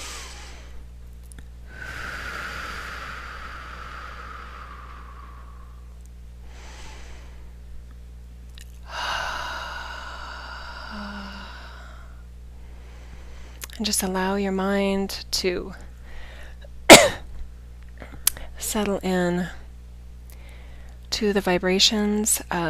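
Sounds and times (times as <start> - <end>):
deep breathing in through the nose and out through the mouth during a guided meditation: 0.0 - 0.9, 1.6 - 7.7, 8.8 - 13.7, 16.0 - 16.7, 20.4 - 21.0
low steady hum: 0.0 - 22.6
speech: 13.8 - 15.8, 18.7 - 19.6, 21.2 - 22.6.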